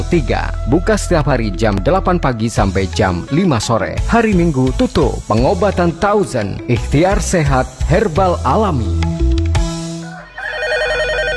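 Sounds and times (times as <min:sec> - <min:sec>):
speech: 0:00.0 - 0:09.2
telephone ringing with electronic two-tone ring: 0:10.2 - 0:11.3.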